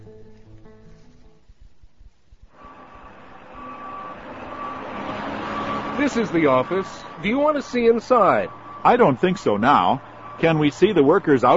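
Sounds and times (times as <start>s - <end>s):
cement truck diesel engine rumble at a construction site: 2.4s - 11.5s
cement truck reversing warning beeper: 2.6s - 11.5s
speech: 6.0s - 11.5s.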